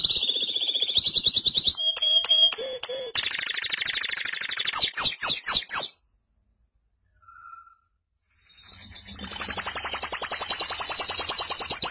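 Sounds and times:
canary singing: 0:00.0 - 0:06.0, 0:08.5 - 0:11.8.

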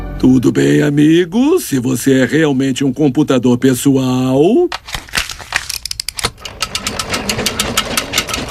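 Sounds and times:
speech: 0:00.2 - 0:05.1
mechanical loom weaving fabric: 0:05.8 - 0:08.4.

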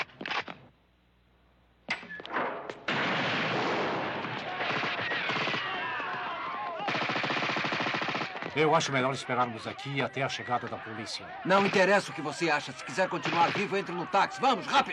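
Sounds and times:
gunfire in a dubbed film scene: 0:02.3 - 0:08.6, 0:11.5 - 0:14.8
speech: 0:08.6 - 0:14.9.

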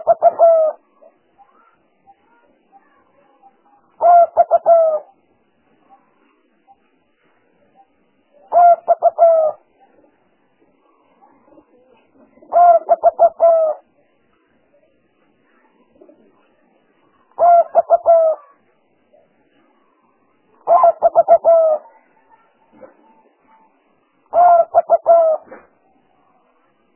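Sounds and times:
spotted dove cooing lure sound for trapping: 0:00.0 - 0:01.7, 0:04.0 - 0:05.2, 0:08.5 - 0:09.7, 0:11.4 - 0:13.9, 0:17.3 - 0:18.6, 0:20.6 - 0:22.1, 0:24.3 - 0:25.7.

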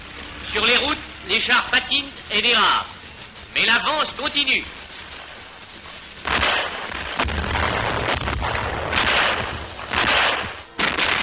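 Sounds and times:
speech: 0:00.6 - 0:03.0, 0:03.6 - 0:04.8
constant rough rumble: 0:02.0 - 0:11.2
captured German cannons firing in winter combat in the Ardennes: 0:06.1 - 0:11.2.

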